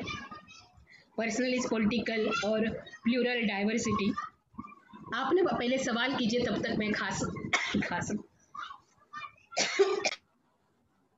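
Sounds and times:
speech: 1.2 - 4.3, 5.1 - 8.3
person coughing: 7.5 - 7.9, 9.6 - 10.2.

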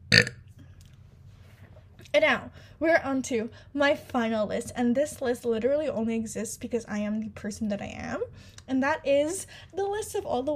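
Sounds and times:
single short loud burp: 0.0 - 0.5
faint hum: 0.0 - 10.5
speech: 2.1 - 10.5.

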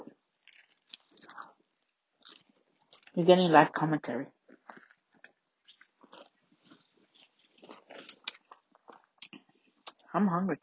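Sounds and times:
crunching as someone bites into a crisp grilled sandwich with homemade bread: 0.2 - 3.2, 4.4 - 9.8
speech: 3.2 - 4.4, 10.2 - 10.6.

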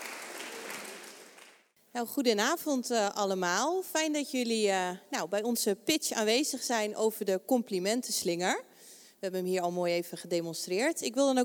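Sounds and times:
audience applause: 0.0 - 1.7
speech: 2.0 - 11.4.

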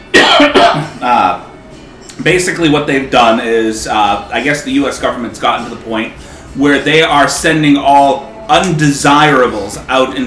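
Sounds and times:
harsh coughs: 0.1 - 1.0
rough voiced throat clearing: 0.1 - 1.1
speech: 2.2 - 10.2.

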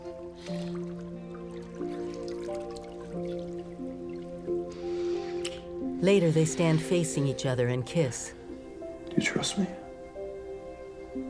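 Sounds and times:
water dribbling and dripping from a squeezed sponge in a bathtub: 0.4 - 4.7
speech: 6.0 - 8.4, 9.2 - 9.8.

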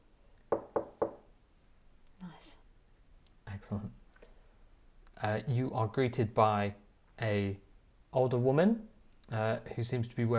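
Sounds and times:
quick evenly spaced knocks on a door: 0.5 - 1.3
speech: 3.6 - 4.0, 5.2 - 10.3.

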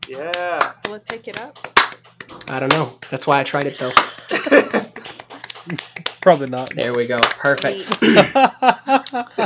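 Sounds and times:
small group applauding: 0.0 - 8.2
speech: 0.1 - 4.9, 5.6 - 9.4
people laughing: 3.8 - 6.1, 7.8 - 9.4.

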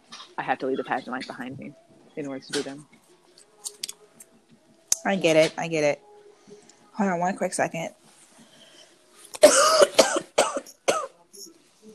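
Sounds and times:
speech: 0.4 - 3.0, 5.0 - 8.0
person coughing and choking: 9.4 - 11.1.

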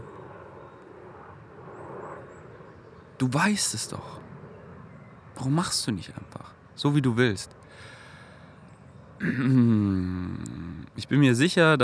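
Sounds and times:
helicopter roaring overhead: 0.0 - 9.4
speech: 3.2 - 4.3, 5.4 - 7.6, 9.2 - 10.2, 11.0 - 11.8.

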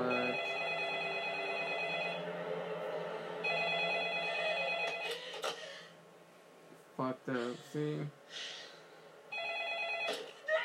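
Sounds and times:
telephone ringing: 0.0 - 2.3, 3.4 - 5.4, 9.3 - 10.5
speech: 7.2 - 8.6.

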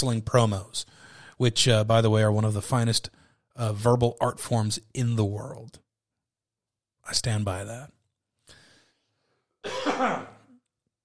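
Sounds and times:
speech: 0.0 - 5.8, 7.1 - 8.0, 10.0 - 10.3
person coughing with a rough throaty rasp: 9.6 - 10.6.

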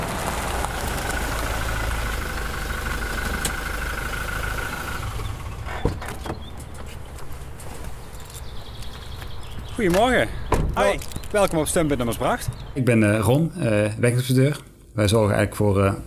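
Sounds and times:
highway road inspector's vehicle pulling up and idling: 0.0 - 12.7
speech: 9.8 - 16.0.

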